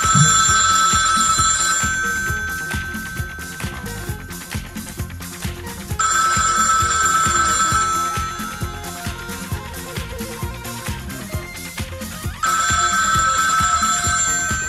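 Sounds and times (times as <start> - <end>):
old landline telephone bell ringing: 0.0 - 4.8, 6.0 - 9.4, 12.4 - 14.6
rhythmic music: 0.0 - 14.6.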